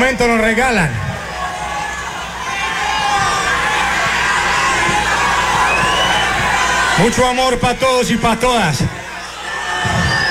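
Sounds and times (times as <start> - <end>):
speech: 0.0 - 1.1, 7.0 - 8.9
large crowd shouting and cheering: 0.0 - 10.2
whoops: 1.3 - 7.0, 9.1 - 10.2.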